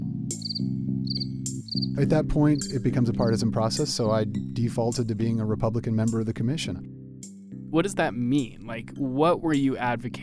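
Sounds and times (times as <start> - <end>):
crickets chirping in pulsed trills: 0.3 - 2.0, 2.6 - 2.8
speech: 2.0 - 7.0, 7.7 - 10.2.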